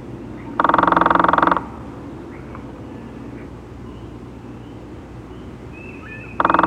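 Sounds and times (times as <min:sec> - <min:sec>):
steady low hum: 0:00.0 - 0:06.6
red-bellied woodpecker harsh rolling churr: 0:00.4 - 0:01.8, 0:05.8 - 0:06.6.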